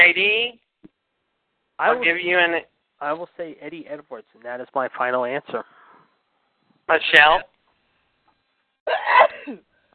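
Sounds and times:
speech: 0:00.0 - 0:00.6, 0:01.8 - 0:05.8, 0:06.9 - 0:07.5, 0:08.9 - 0:09.7
loud sneeze: 0:08.9 - 0:09.6.

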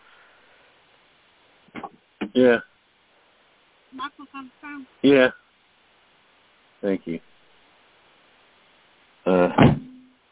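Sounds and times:
speech: 0:02.4 - 0:02.7, 0:03.9 - 0:05.4, 0:06.8 - 0:07.3
door slamming shut: 0:09.6 - 0:09.9.

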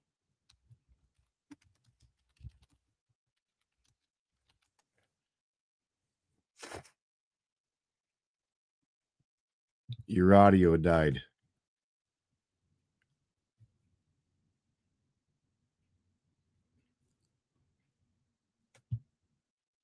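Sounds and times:
typing on a computer keyboard: 0:01.5 - 0:02.7
speech: 0:10.1 - 0:11.3.

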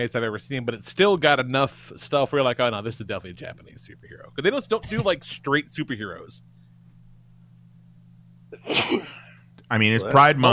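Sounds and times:
speech: 0:00.0 - 0:06.5, 0:08.5 - 0:10.5
low steady hum: 0:00.0 - 0:10.5
sneeze: 0:08.6 - 0:09.3.

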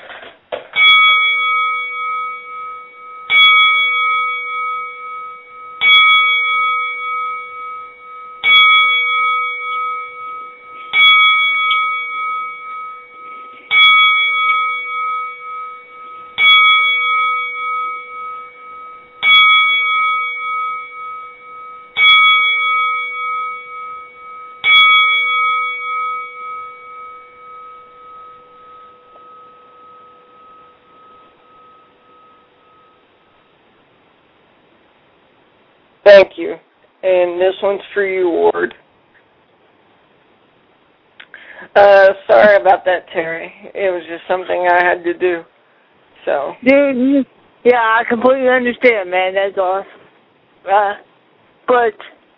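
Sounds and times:
bell ringing in a salute: 0:00.0 - 0:35.6
speech: 0:36.0 - 0:38.8, 0:41.8 - 0:45.5, 0:46.2 - 0:50.0, 0:50.6 - 0:51.1, 0:51.7 - 0:52.2.

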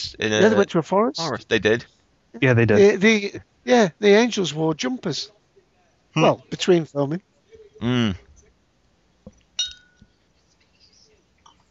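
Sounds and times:
speech: 0:00.0 - 0:05.4, 0:06.1 - 0:08.2
glass clinking: 0:09.3 - 0:10.1.

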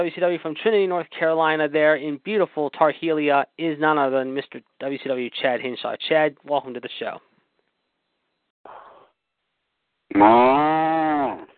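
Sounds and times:
speech: 0:00.0 - 0:07.3, 0:10.1 - 0:11.4
cow mooing with a rich harmonic drone: 0:10.1 - 0:11.5.

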